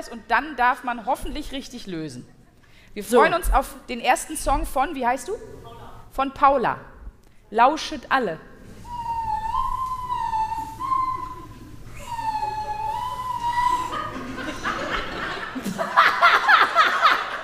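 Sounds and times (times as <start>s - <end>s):
speech: 0.0s - 6.9s, 7.5s - 8.5s
person humming a national anthem: 8.8s - 14.3s
person giggling and laughing: 12.0s - 17.4s.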